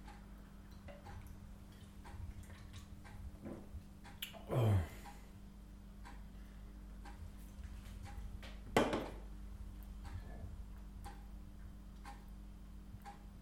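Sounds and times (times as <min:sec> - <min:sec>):
clock ticking: 0:00.0 - 0:02.3, 0:03.0 - 0:03.3, 0:06.0 - 0:07.4, 0:08.0 - 0:08.4, 0:09.8 - 0:13.3
low hum: 0:00.0 - 0:13.3.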